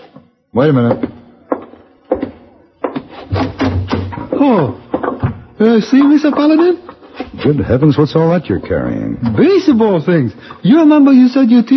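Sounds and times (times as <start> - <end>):
speech: 0.6 - 1.2, 4.4 - 4.8, 5.6 - 6.8, 7.4 - 11.7
hollow wooden door thunks and latch knocks: 3.3 - 5.5.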